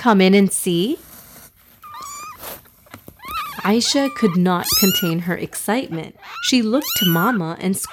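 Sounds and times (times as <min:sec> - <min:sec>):
speech: 0:00.0 - 0:01.1, 0:03.6 - 0:07.9
soft rustles and clicks: 0:00.8 - 0:05.8
kitten giving a high-pitched meow: 0:01.8 - 0:02.5, 0:03.2 - 0:05.2, 0:06.0 - 0:07.9.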